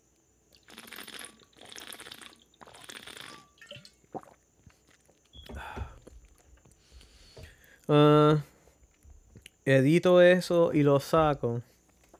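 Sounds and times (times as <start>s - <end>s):
small wet mouth sounds: 0.5s - 6.5s
sips and swallows of water from a bottle: 0.5s - 7.8s
speech: 7.9s - 8.5s, 9.7s - 11.7s.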